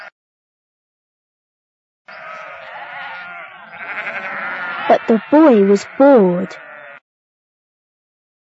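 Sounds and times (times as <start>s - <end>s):
sheep bleating: 2.1s - 7.0s
speech: 4.9s - 6.6s.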